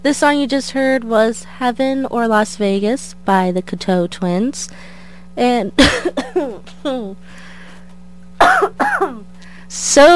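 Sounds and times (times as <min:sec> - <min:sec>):
speech: 0:00.0 - 0:07.4, 0:08.5 - 0:10.1
person coughing from a cold: 0:05.8 - 0:07.1, 0:08.4 - 0:09.3.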